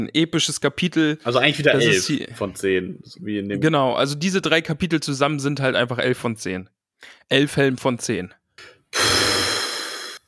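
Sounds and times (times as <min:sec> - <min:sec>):
speech: 0:00.0 - 0:09.2
loud forceful huff of breath through the nose: 0:08.6 - 0:10.2
person sniffing: 0:08.6 - 0:10.2.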